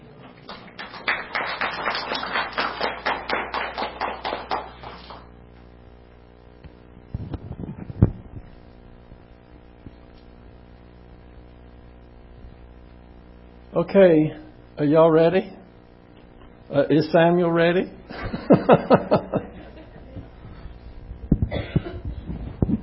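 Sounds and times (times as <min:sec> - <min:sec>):
audience clapping in a steady rhythm: 0:00.2 - 0:05.3
speech: 0:13.8 - 0:15.6, 0:16.7 - 0:19.3
laughter: 0:18.1 - 0:20.4.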